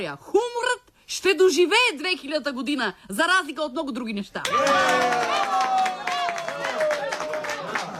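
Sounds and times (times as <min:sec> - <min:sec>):
speech: 0:00.0 - 0:00.4, 0:01.1 - 0:05.5
audience at a lecture clapping: 0:04.4 - 0:07.9.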